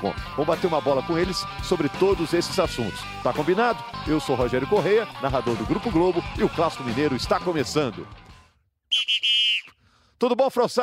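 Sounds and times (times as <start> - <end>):
speech: 0.0 - 8.2, 10.2 - 10.8
referee whistle blasts: 8.9 - 9.8.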